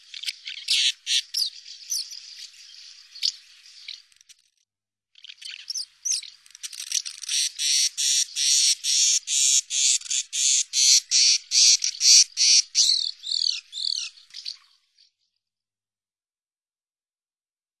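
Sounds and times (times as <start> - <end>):
swallow twittering with sharp high chirps: 0.0 - 4.0, 5.2 - 14.8.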